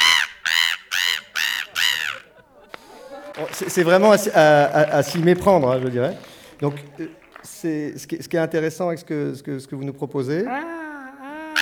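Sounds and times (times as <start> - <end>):
person imitating seagull squawking calls: 0.0 - 2.4, 10.4 - 11.6
laughter: 0.9 - 7.9, 10.3 - 11.6
speech: 3.4 - 10.8.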